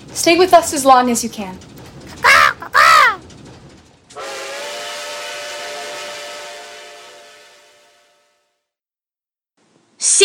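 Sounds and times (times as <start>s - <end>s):
speech: 0.2s - 1.8s
crow cawing: 2.2s - 3.2s.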